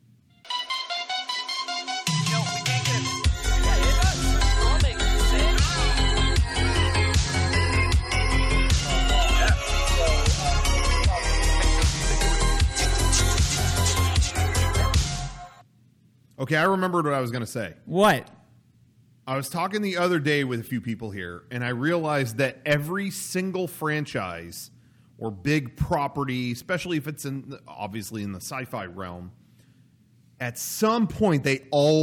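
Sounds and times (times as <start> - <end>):
loud upbeat podcast theme song with heavy bass and driving beat: 0.5 - 15.6
speech: 16.5 - 18.4, 19.3 - 29.4, 30.4 - 32.0.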